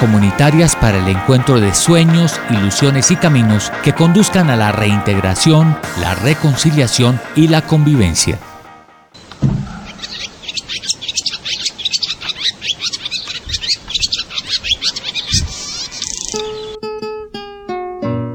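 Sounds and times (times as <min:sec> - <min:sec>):
speech: 0:00.0 - 0:08.5
low thumps: 0:09.2 - 0:10.1, 0:15.3 - 0:15.7
swallows chirping: 0:09.2 - 0:16.8.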